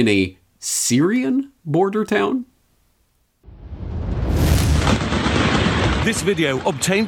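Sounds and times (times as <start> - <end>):
speech: 0.0 - 2.5, 6.0 - 7.0
explosions from military bombing of a Syrian border town: 3.4 - 7.0.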